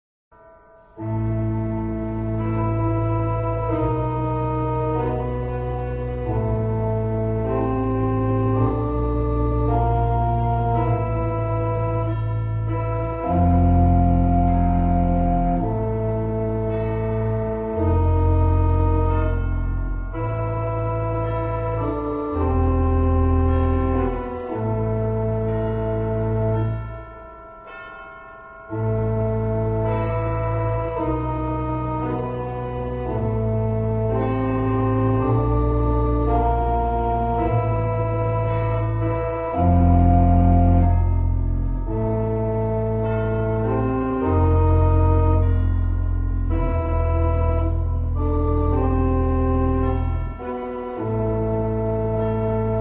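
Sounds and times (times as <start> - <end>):
pipe organ music in original key: 0.4 - 52.7.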